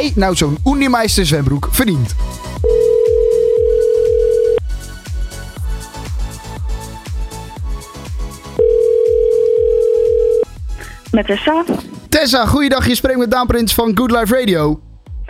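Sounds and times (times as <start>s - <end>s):
speech: 0.0s - 2.7s, 11.2s - 14.9s
rhythmic thumping music bed: 0.0s - 9.5s, 10.4s - 15.2s
ringing tone of an outgoing telephone call: 2.6s - 4.6s, 8.6s - 10.5s.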